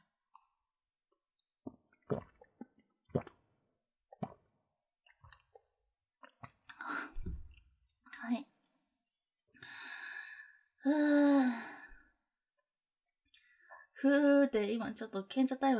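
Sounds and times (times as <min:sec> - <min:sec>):
person sipping and swallowing water: 0:01.4 - 0:07.7
speech: 0:10.9 - 0:11.1, 0:14.0 - 0:15.7.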